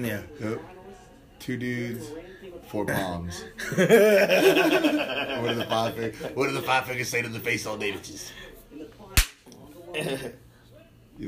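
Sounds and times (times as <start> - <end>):
speech: 0.0 - 0.8, 1.4 - 8.8, 9.9 - 10.4
laughter: 3.6 - 6.4
open-hand slap: 9.2 - 9.6.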